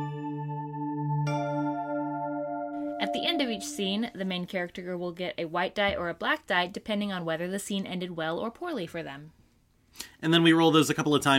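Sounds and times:
two-note bell-like chime: 0.0 - 4.1
speech: 3.1 - 9.4, 10.0 - 11.3.

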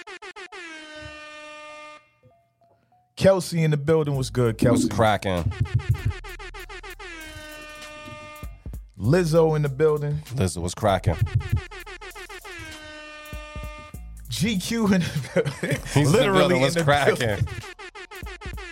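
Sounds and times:
air horn sound effect blasts: 0.0 - 2.2, 6.8 - 8.6, 11.8 - 14.0
speech: 3.2 - 6.2, 9.0 - 11.7, 14.4 - 17.7
heavy booming thuds: 5.6 - 6.2
laughter: 14.8 - 17.6.

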